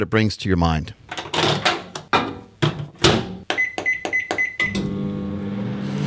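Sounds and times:
speech: 0.0s - 1.0s
microwave oven door shutting thumps: 1.4s - 4.5s
microwave oven running with steady low hum: 1.5s - 6.0s
microwave oven quick high beeps: 3.6s - 4.8s.

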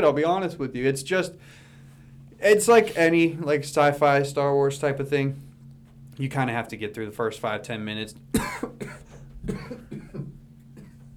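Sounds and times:
speech: 0.0s - 1.6s, 2.4s - 5.5s, 6.2s - 9.9s
harsh coughing fit: 8.3s - 11.0s.

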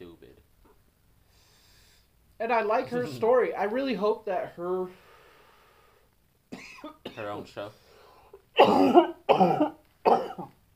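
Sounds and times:
speech: 2.4s - 5.1s, 7.2s - 7.8s, 8.6s - 9.8s
person coughing harshly while smoking a blunt: 6.5s - 7.5s, 8.6s - 10.6s.

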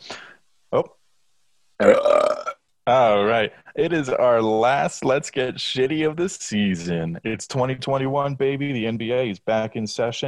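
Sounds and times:
speech: 0.7s - 1.0s, 1.8s - 2.0s, 2.9s - 10.2s
low throaty burp: 1.8s - 2.6s.

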